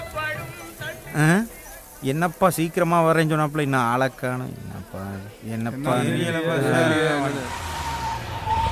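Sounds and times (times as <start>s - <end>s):
speech: 1.1s - 7.7s
car pulling up: 6.1s - 8.7s
tires or brakes squealing: 6.3s - 8.7s.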